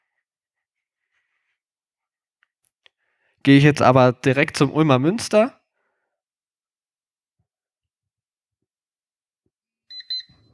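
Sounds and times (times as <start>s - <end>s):
speech: 3.4s - 5.6s
electronic alarm-clock alert from a navigation app: 9.9s - 10.5s.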